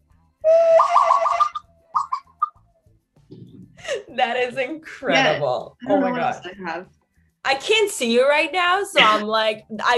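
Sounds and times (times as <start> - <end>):
person whistling a bird-like call with the mouth: 0.5 - 2.2
speech: 4.2 - 9.9.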